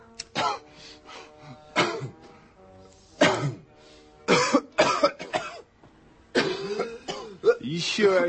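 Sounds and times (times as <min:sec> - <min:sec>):
strained throat-clearing: 0:00.3 - 0:00.6, 0:01.8 - 0:02.2, 0:03.2 - 0:03.6, 0:04.3 - 0:05.6, 0:06.4 - 0:07.7
man coughing hard in a fit: 0:00.4 - 0:00.7, 0:01.8 - 0:02.2, 0:03.2 - 0:03.6, 0:04.3 - 0:05.6, 0:06.3 - 0:08.2
speech: 0:07.8 - 0:08.2.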